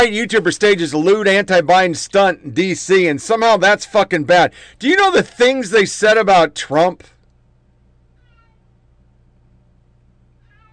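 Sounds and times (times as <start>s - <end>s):
speech: 0.0s - 7.2s
steady low electrical hum: 0.0s - 10.7s
cat meowing: 8.2s - 8.6s, 10.4s - 10.7s.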